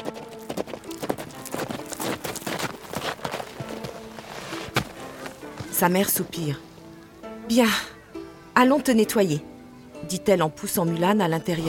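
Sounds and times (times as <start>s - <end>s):
horse hooves galloping: 0.0s - 5.8s
speech: 5.8s - 6.7s, 7.5s - 7.9s, 8.6s - 9.5s, 10.1s - 11.6s.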